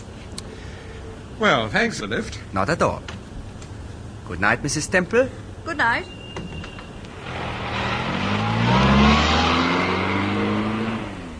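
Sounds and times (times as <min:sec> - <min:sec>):
speech: 0:01.4 - 0:03.2, 0:04.3 - 0:06.2
car engine rumbling as the vehicle pulls away: 0:06.9 - 0:11.3.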